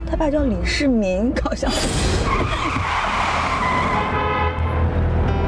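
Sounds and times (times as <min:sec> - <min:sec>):
speech: 0:00.1 - 0:03.1
car tires skidding and squealing while braking hard: 0:01.9 - 0:05.3.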